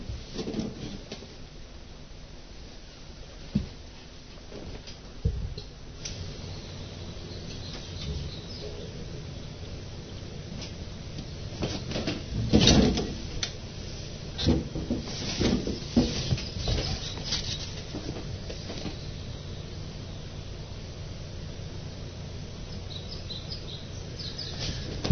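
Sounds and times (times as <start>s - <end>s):
steady open-air hush: 0.2s - 25.1s
blackbird singing outdoors: 6.4s - 9.3s, 22.7s - 24.9s.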